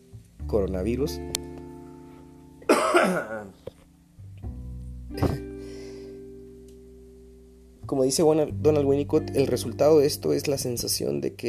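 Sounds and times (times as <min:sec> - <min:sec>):
speech: 0:00.5 - 0:01.5, 0:03.1 - 0:03.7, 0:07.9 - 0:11.4
person coughing: 0:02.7 - 0:03.5, 0:05.2 - 0:05.4.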